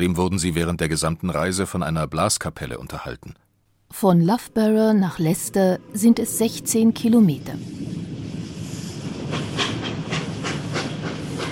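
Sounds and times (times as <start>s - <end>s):
speech: 0.0s - 8.0s
steam locomotive chuffing: 6.1s - 11.4s
constant hiss: 7.6s - 11.4s.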